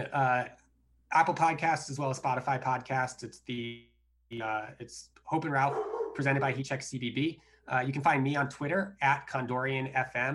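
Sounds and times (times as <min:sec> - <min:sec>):
speech: 0:00.0 - 0:10.3
dog barking: 0:05.6 - 0:06.6.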